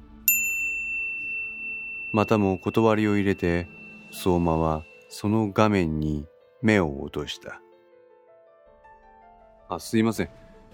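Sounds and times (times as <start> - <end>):
mobile phone notification chime: 0.3 - 5.3
speech: 2.1 - 7.6, 9.7 - 10.7.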